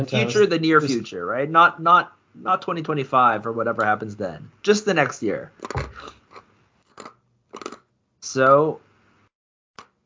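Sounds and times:
speech: 0.0 - 6.2, 8.2 - 8.8
ice being chewed in winter: 6.0 - 7.8.

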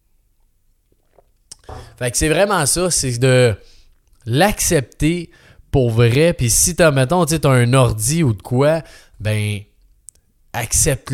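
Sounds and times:
faint wet mouth sounds while sipping water: 0.9 - 1.9
sharp little mouth click: 1.5 - 2.0
speech: 2.0 - 9.7, 10.6 - 11.1.

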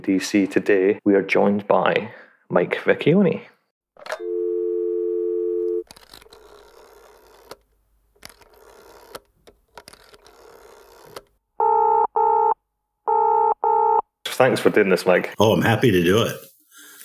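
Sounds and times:
speech: 0.0 - 4.4, 14.4 - 16.5
steady telephone dial tone: 4.1 - 7.6, 10.0 - 14.0
loud pulsing telephone busy signal: 4.2 - 5.8.

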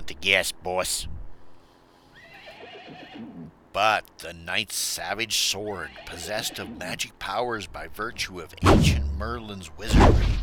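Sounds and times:
speech: 0.1 - 1.2, 3.7 - 10.4
armored knight's horse whinnying with a shrill wavering neigh: 2.2 - 3.5, 5.7 - 7.0.

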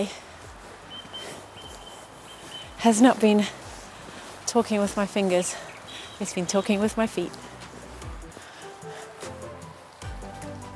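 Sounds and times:
speech: 0.0 - 0.3, 2.8 - 3.6, 4.5 - 7.5
heavy rain pouring outdoors: 0.0 - 8.7
wind buffeting the microphone: 0.0 - 8.9.

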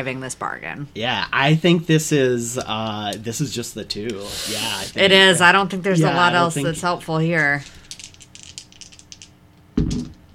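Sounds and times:
speech: 0.0 - 7.8
two dice rattling: 7.6 - 9.4
dice landing and clattering on a table: 7.6 - 10.2.

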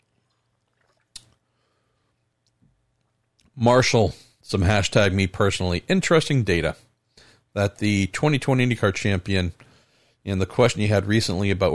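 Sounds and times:
swallow: 0.0 - 1.4
sipping a drink: 0.0 - 2.5
speech: 3.6 - 6.9, 7.6 - 11.7.

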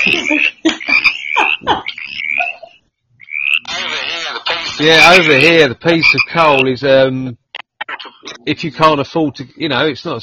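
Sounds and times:
frog croaking: 0.0 - 6.7
speech: 4.8 - 7.4, 8.5 - 10.2.

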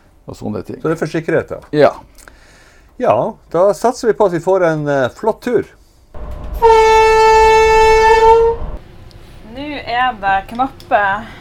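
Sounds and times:
speech: 0.3 - 2.3, 3.0 - 5.8, 10.0 - 11.3
train horn safety signal blast on the Ofotbanen railway: 6.2 - 8.8.

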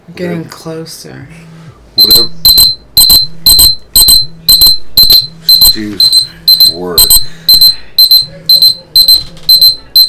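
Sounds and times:
speech: 0.1 - 2.6, 5.7 - 7.3
loud electronic alarm beeping in double pulses: 2.0 - 10.0.

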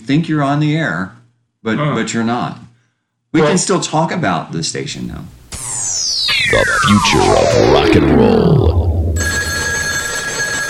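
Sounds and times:
speech: 0.0 - 2.7, 3.3 - 5.8, 6.5 - 8.8
telephone bell ringing: 9.2 - 10.6.

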